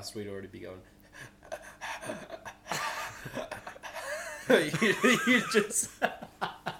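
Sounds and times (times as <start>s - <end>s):
speech: 0.0s - 1.3s, 2.0s - 2.4s, 4.5s - 6.2s
person imitating heavy panting: 1.1s - 2.7s
laughter: 1.4s - 6.7s.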